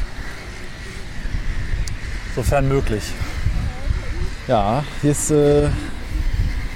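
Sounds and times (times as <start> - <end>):
strong wind buffeting the microphone on the North Sea coast: 0.0 - 6.7
speech: 2.4 - 3.3, 4.5 - 6.0.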